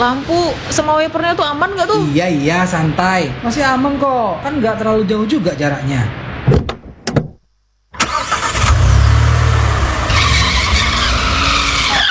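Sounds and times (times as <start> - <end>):
speech: 0.0 - 6.2
rough car engine noise: 8.0 - 12.0
tires skidding as a car slides on a slippery wet road in the dark: 8.0 - 12.0.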